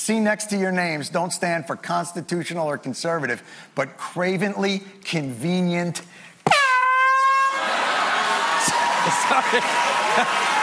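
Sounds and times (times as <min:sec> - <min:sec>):
speech: 0:00.0 - 0:06.6, 0:09.1 - 0:10.6
loud sudden air horn blast: 0:06.5 - 0:07.7
rowdy crowd laughing, cheering and chattering: 0:07.4 - 0:10.6.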